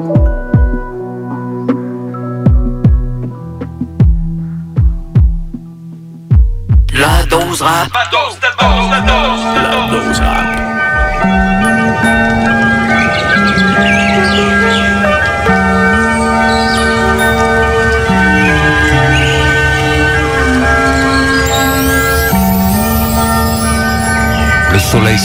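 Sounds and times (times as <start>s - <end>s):
soft gentle instrumental melody of sustained ringing tones: 0.0s - 25.2s
speech: 7.5s - 9.1s
light birdsong chirping: 8.6s - 25.2s.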